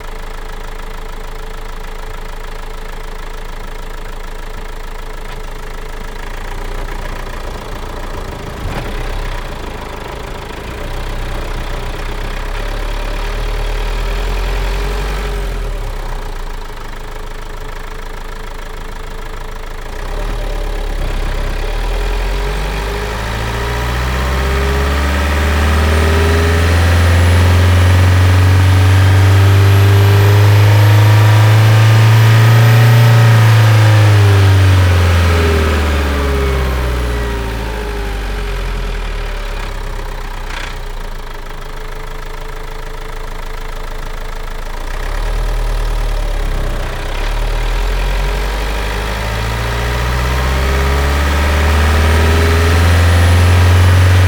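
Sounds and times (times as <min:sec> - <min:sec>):
Renault Master 2.3 dCi diesel engine revving: 0:05.7 - 0:16.7, 0:19.9 - 0:42.2, 0:44.4 - 0:54.2.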